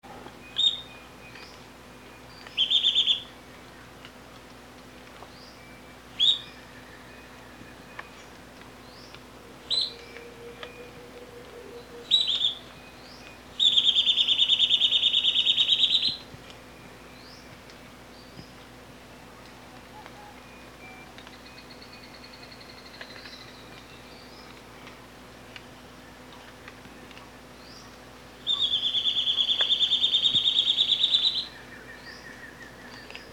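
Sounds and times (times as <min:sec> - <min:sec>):
chupa-dente bird singing: 0:00.4 - 0:03.9, 0:05.2 - 0:18.6, 0:19.2 - 0:24.6, 0:25.7 - 0:33.3.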